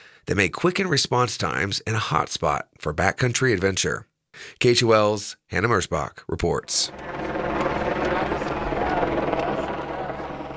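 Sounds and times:
speech: 0:00.3 - 0:07.4
helicopter overhead with rotor chop and engine drone: 0:06.7 - 0:10.5.

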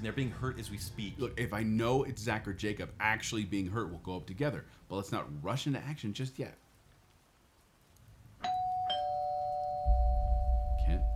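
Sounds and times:
speech: 0:00.0 - 0:06.6
two-tone doorbell chime: 0:08.4 - 0:11.1.

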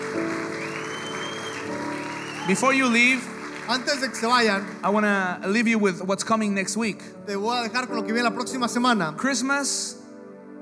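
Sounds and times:
audience applauding: 0:00.0 - 0:05.9
speech: 0:02.5 - 0:10.0.

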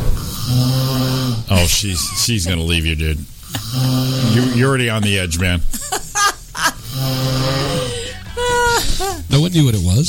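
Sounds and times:
snoring sound effect: 0:00.2 - 0:01.8, 0:03.5 - 0:05.0, 0:06.7 - 0:09.2
speech: 0:01.5 - 0:06.0, 0:07.0 - 0:07.6, 0:09.4 - 0:10.0
laughter: 0:01.7 - 0:02.8, 0:04.6 - 0:07.0.

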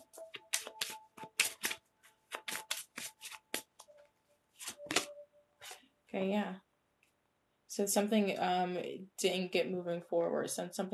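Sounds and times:
tarot cards being shuffled and drawn: 0:00.0 - 0:04.0, 0:04.6 - 0:05.8
speech: 0:06.1 - 0:06.7, 0:07.8 - 0:10.9.

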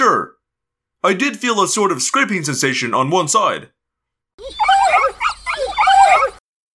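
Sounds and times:
speech: 0:00.0 - 0:00.4, 0:01.0 - 0:03.8
dogs whimpering and yelping: 0:04.4 - 0:06.4.

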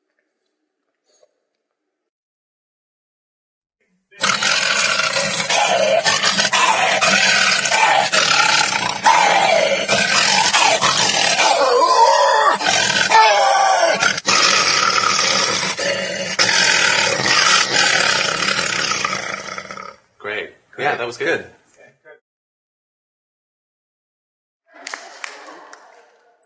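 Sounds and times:
man imitating a lion roar and growl: 0:04.2 - 0:20.0.

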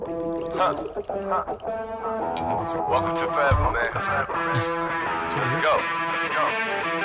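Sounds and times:
drink pouring into a glass: 0:00.0 - 0:04.0
speech: 0:00.6 - 0:06.9.

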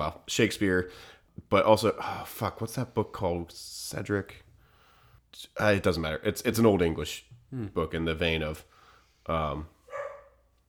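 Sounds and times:
speech: 0:00.0 - 0:04.4, 0:05.3 - 0:08.7, 0:09.3 - 0:09.8
dog barking: 0:09.9 - 0:10.5.

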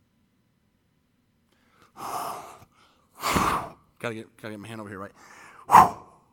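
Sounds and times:
person blowing breath out forcefully: 0:02.0 - 0:03.8, 0:05.2 - 0:06.2
speech: 0:04.0 - 0:05.9.

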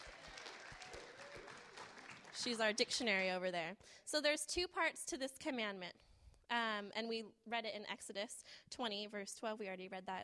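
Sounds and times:
audience applauding: 0:00.0 - 0:02.8
speech: 0:02.4 - 0:10.2.

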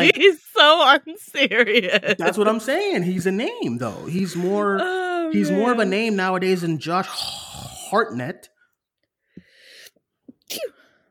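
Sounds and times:
speech: 0:00.0 - 0:08.5, 0:10.5 - 0:10.8
quick breathy intake before a sneeze: 0:09.4 - 0:10.0
person sneezing: 0:10.4 - 0:10.8.

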